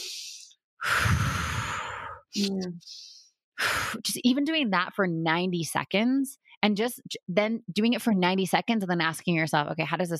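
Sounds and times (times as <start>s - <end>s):
breathwork exhale out through the mouth: 0.0s - 4.0s
breathwork inhale through the nose: 0.0s - 4.0s
speech: 2.4s - 10.1s.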